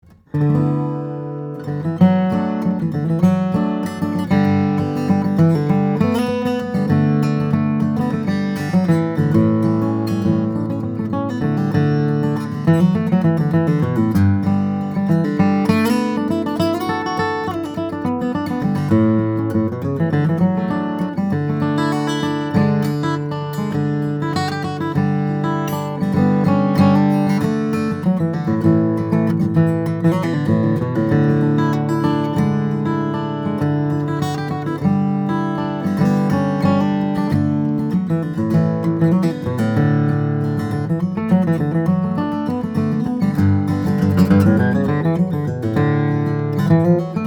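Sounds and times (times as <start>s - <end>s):
Martin Custom Shop D-18 steel string flattop guitar of sinker mahogany and Adirondack spruce: 0.0s - 47.2s.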